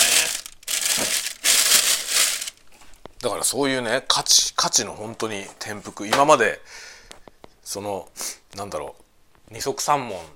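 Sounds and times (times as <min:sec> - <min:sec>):
plastic sorting garbage bag crinkling: 0:00.0 - 0:02.7
speech: 0:03.2 - 0:06.9, 0:07.7 - 0:10.3.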